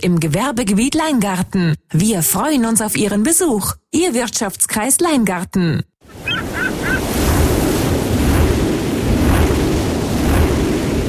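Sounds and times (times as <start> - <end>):
speech: 0.0 - 6.2
rushing surf: 6.1 - 11.0
strong wind sweeping across offshore wind turbines: 6.1 - 11.0
short bird chirps: 6.2 - 7.0.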